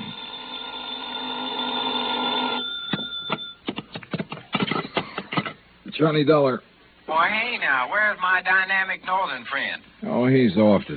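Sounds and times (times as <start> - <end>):
old-fashioned telephone bell ringing: 0.0 - 3.6
speech: 6.0 - 10.9.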